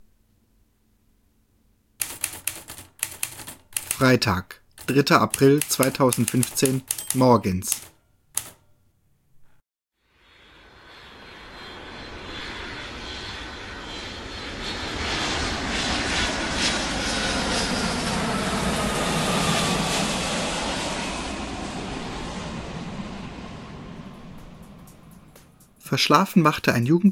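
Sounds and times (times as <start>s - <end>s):
quick clicks: 2.0s - 8.7s
speech: 4.0s - 7.9s, 26.0s - 27.1s
airplane engine roar after landing: 10.2s - 25.9s.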